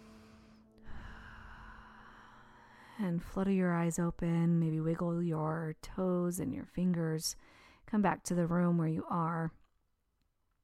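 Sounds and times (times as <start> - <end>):
deep inhale and exhale during a guided relaxation exercise: 0.0 - 3.0
speech: 3.0 - 9.6.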